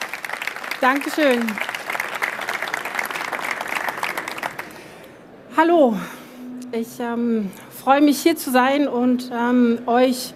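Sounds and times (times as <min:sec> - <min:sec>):
audience applauding a speaker onto a stage: 0:00.0 - 0:04.9
speech: 0:00.8 - 0:01.7, 0:05.6 - 0:10.3.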